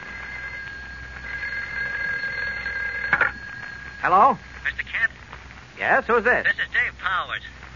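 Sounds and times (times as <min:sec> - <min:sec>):
old-fashioned telephone bell ringing: 0:00.0 - 0:04.6
speech: 0:04.0 - 0:04.8, 0:05.8 - 0:07.6.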